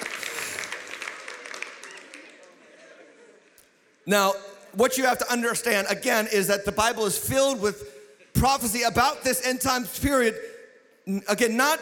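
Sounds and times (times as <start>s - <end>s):
audience clapping: 0.0s - 3.2s
speech: 4.1s - 10.5s, 11.1s - 11.8s.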